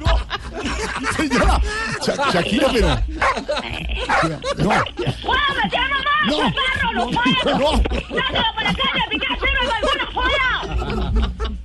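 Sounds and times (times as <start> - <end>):
people laughing: 0.0 - 11.6
speech: 1.0 - 9.4
dog barking: 3.2 - 3.4, 4.1 - 4.9.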